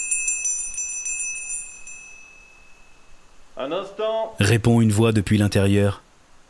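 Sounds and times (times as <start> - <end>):
small hand bell used as a doorbell ringing: 0.0 - 3.3
speech: 3.6 - 6.0.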